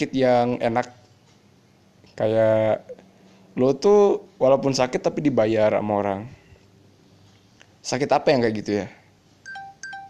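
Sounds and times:
speech: 0.0s - 1.0s, 2.2s - 3.0s, 3.6s - 6.4s, 7.8s - 9.0s
phone low-battery alert two-note electronic chime: 9.4s - 10.0s.

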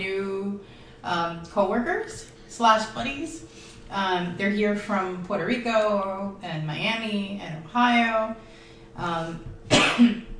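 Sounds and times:
speech: 1.0s - 10.3s
harsh coughs with a throaty rasp: 9.7s - 10.3s.

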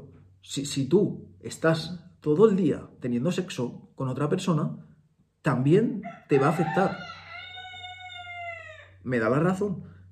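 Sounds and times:
speech: 0.4s - 7.1s, 9.0s - 9.9s
rooster crowing: 6.0s - 9.0s.

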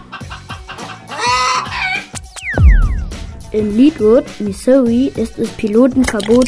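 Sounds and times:
chickens clucking: 0.0s - 2.1s
speech: 3.5s - 6.4s.

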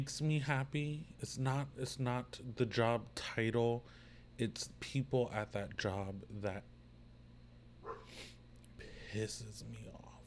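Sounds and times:
speech: 0.0s - 6.7s, 9.1s - 10.2s
steady low hum: 0.0s - 10.2s
dog barking at a deer: 7.8s - 8.2s.

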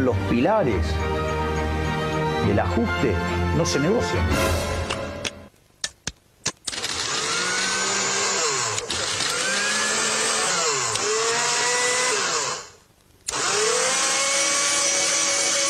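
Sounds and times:
speech: 0.0s - 1.4s, 2.4s - 4.8s
sharp clicks: 4.9s - 7.2s, 8.7s - 9.7s, 10.9s - 11.4s, 13.0s - 13.5s
electric blender whirring: 6.7s - 15.6s.

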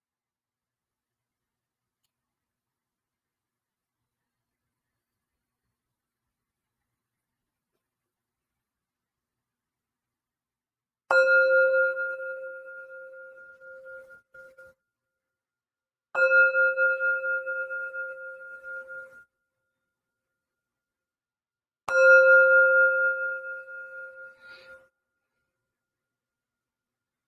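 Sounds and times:
meditation bell ringing: 11.1s - 14.8s, 16.2s - 19.7s, 21.9s - 24.8s.

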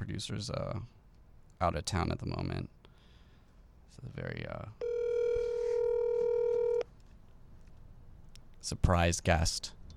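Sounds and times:
faint hiss: 0.0s - 9.9s
speech: 0.1s - 1.0s, 1.6s - 2.8s, 3.9s - 4.9s, 8.6s - 9.8s
phone line tone before a call connects: 4.8s - 6.9s.

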